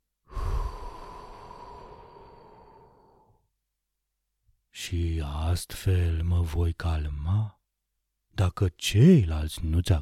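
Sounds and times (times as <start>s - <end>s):
deep breath: 0.3s - 3.5s
speech: 4.9s - 7.6s, 8.4s - 10.0s.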